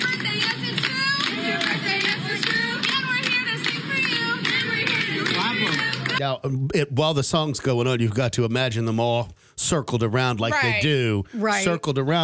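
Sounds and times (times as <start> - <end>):
room full of people clapping at a restaurant birthday: 0.0 - 6.2
speech: 6.2 - 12.2.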